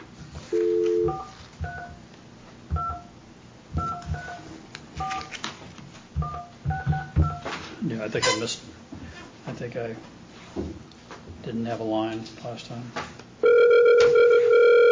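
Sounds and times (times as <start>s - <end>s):
touch tones of a phone keypad beeping: 0.6s - 2.0s, 2.7s - 3.1s, 3.8s - 5.3s, 13.4s - 14.9s
speech: 8.1s - 8.7s, 9.6s - 10.8s, 11.4s - 13.2s.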